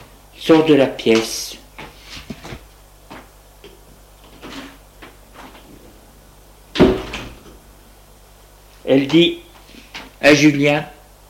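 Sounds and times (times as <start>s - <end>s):
speech: 0.4s - 1.6s, 8.9s - 9.4s, 10.2s - 11.0s
heavier thud of a door swinging open: 6.7s - 7.7s.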